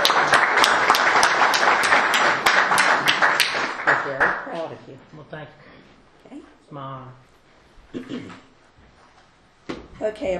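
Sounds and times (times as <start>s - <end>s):
room full of people applauding: 0.0s - 4.6s
sharp individual claps: 0.0s - 4.6s
speech: 4.8s - 7.3s, 7.9s - 8.5s, 10.0s - 10.3s.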